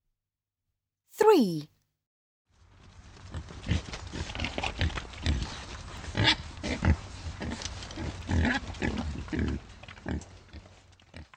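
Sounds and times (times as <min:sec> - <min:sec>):
speech: 0:01.3 - 0:01.7
wild boar grunting and snorting while rooting for food: 0:03.3 - 0:11.3.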